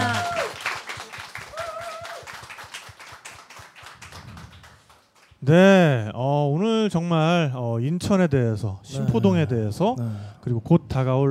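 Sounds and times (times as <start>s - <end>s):
small group applauding: 0.0s - 5.5s
speech: 5.5s - 11.2s.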